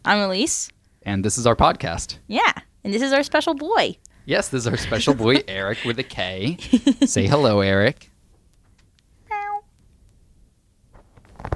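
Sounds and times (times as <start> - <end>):
speech: 0.0 - 8.1
laughter: 4.5 - 7.8
cat meowing: 9.3 - 9.7
rustling noise: 10.9 - 11.5.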